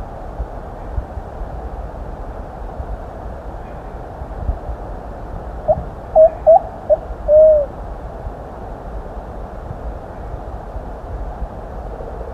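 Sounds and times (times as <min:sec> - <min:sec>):
steady background hiss: 0:00.0 - 0:12.3
Plumbeous pigeon song of short hoots and drawn-out coo: 0:05.7 - 0:07.7.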